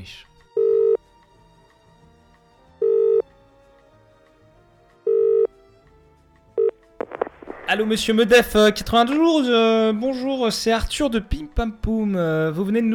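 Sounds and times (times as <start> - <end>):
speech: 0.0 - 0.3, 7.7 - 12.9
telephone ringback tone: 0.6 - 1.0, 2.8 - 3.2, 5.1 - 5.5
faint clicks as the line is picked up: 7.0 - 8.0.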